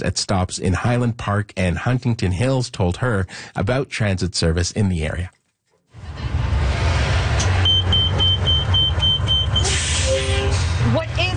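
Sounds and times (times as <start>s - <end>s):
speech: 0.0s - 5.4s
road traffic rumbling past a busy bus stop: 5.9s - 11.3s
rising whine: 6.0s - 9.5s
evenly spaced high beeps: 7.6s - 9.8s.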